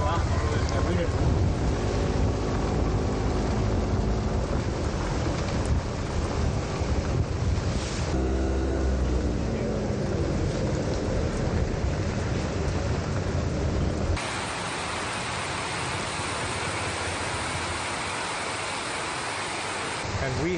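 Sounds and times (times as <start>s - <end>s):
low engine hum: 0.0s - 20.1s
heavy rain on a metal roof in Chennai: 0.0s - 20.5s.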